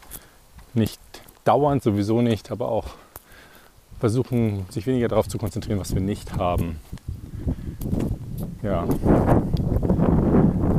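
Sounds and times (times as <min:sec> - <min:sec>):
speech: 0:00.7 - 0:03.0, 0:04.0 - 0:07.1, 0:08.6 - 0:09.6
wind buffeting the microphone: 0:03.8 - 0:10.7.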